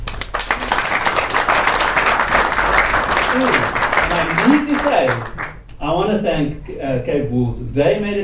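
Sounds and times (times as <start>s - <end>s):
audience applauding: 0.0s - 5.7s
speech: 3.4s - 8.2s.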